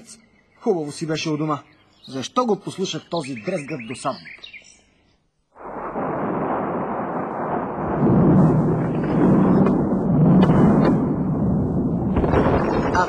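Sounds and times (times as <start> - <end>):
speech: 0.1 - 4.6
deep continuous thunder rumbling as a storm begins: 5.6 - 13.0.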